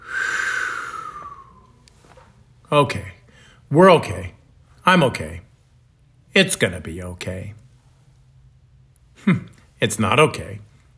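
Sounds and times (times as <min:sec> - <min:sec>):
slow exhale during a guided breathing exercise: 0:00.0 - 0:01.7
speech: 0:02.7 - 0:05.5, 0:06.4 - 0:07.6, 0:09.2 - 0:10.7.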